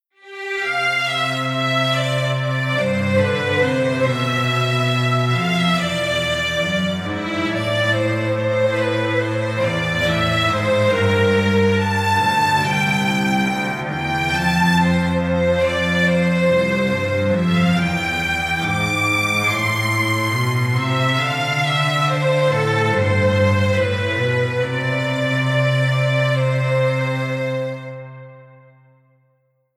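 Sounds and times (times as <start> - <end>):
polyphonic strings: 0.1 - 28.9
bass: 0.7 - 28.2.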